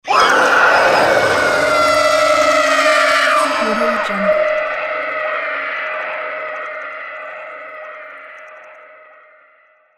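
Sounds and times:
horrifying demonic scream: 0.0s - 6.8s.

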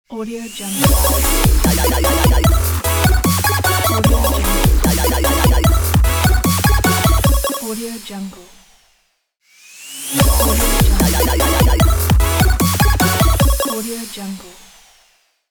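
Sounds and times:
8-bit dubstep logo jingle: 0.8s - 7.9s, 10.2s - 14.0s.

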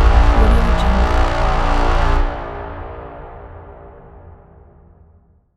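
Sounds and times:
epic horn: 0.1s - 3.5s.

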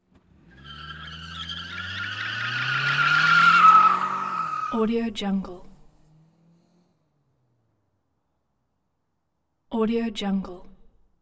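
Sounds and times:
automobile skid and squeal: 0.0s - 4.9s, 5.6s - 7.7s.

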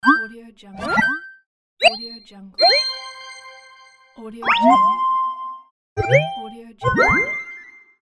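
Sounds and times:
UI menu popup message sound: 0.0s - 3.7s, 4.4s - 5.1s, 6.0s - 7.2s.

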